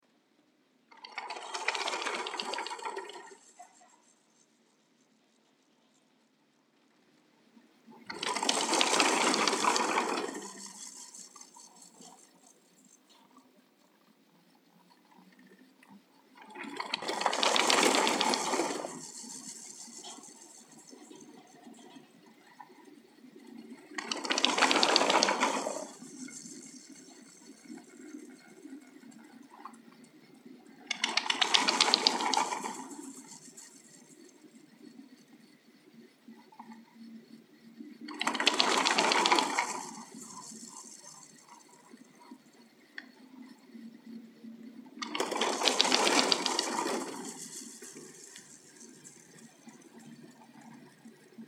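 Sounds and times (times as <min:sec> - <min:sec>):
ski chairlift in Arosa: 0:00.9 - 0:04.3, 0:07.9 - 0:13.2, 0:16.4 - 0:35.4, 0:38.0 - 0:43.6, 0:45.0 - 0:51.4.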